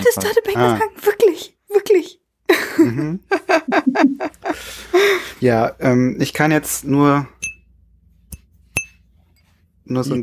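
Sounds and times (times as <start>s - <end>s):
speech: 0.1s - 1.5s, 5.4s - 7.4s, 9.9s - 10.2s
laughter: 2.5s - 4.7s
glasses clinking in a toast: 7.4s - 7.6s, 8.8s - 9.0s.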